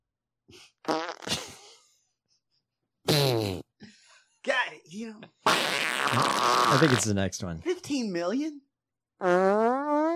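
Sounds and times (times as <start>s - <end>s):
squeaky fart noises from a novelty fart machine: 0.8s - 1.5s, 3.1s - 3.7s, 5.4s - 7.1s, 9.2s - 10.1s
speech: 6.7s - 9.9s.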